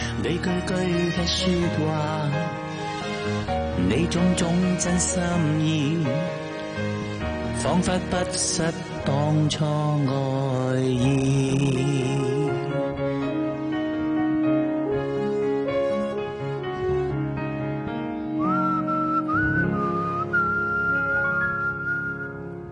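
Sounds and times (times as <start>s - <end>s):
instrumental backing music: 0.0s - 22.6s
speech: 0.2s - 12.4s
person whistling a tune: 18.4s - 22.5s.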